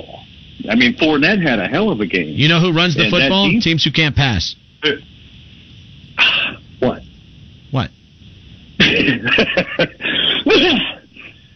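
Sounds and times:
speech: 0.6s - 5.1s, 6.2s - 7.0s, 7.7s - 8.0s, 9.0s - 9.9s, 10.5s - 10.9s
person coughing: 6.2s - 6.6s, 8.8s - 9.3s, 10.0s - 11.1s
laughter: 8.8s - 10.8s.

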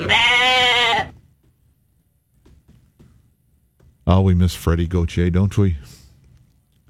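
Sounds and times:
goat bleating: 0.0s - 1.2s
speech: 4.1s - 6.0s.

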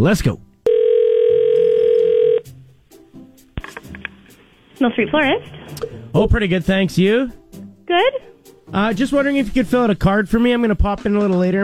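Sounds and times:
speech: 0.0s - 0.5s, 4.8s - 11.6s
telephone dial tone: 0.7s - 2.5s.

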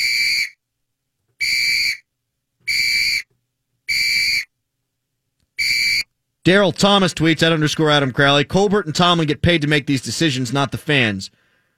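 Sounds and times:
loud shrill whistle blasts: 0.0s - 0.6s, 1.4s - 3.3s, 3.9s - 4.5s, 5.6s - 6.1s
speech: 6.4s - 11.4s.

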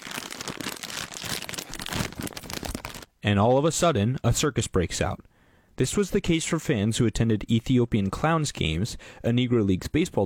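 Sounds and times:
plastic bag of peanuts torn open and crinkled: 0.0s - 3.1s
speech: 3.2s - 10.2s.

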